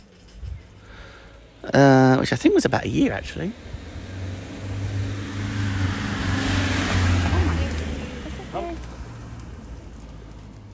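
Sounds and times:
speech: 0:01.6 - 0:03.7
fast car roaring past with engine drone and tyre rush: 0:03.0 - 0:10.7.

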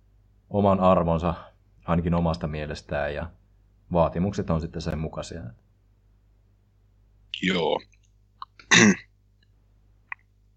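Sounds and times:
speech: 0:00.5 - 0:05.7, 0:07.4 - 0:08.0
harsh coughing and throat clearing into a microphone: 0:08.4 - 0:09.1.

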